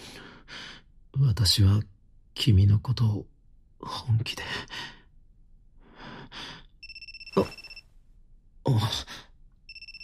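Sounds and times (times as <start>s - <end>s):
speech: 1.2s - 4.8s, 7.4s - 7.6s
telephone ringing with electronic trill: 6.8s - 7.8s, 9.7s - 10.0s.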